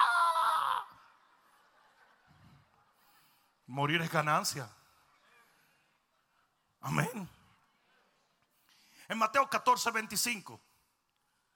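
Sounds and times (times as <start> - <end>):
person imitating a roller coaster rider's scream: 0.0 - 1.0
speech: 3.7 - 4.8, 6.8 - 7.3, 9.1 - 10.7.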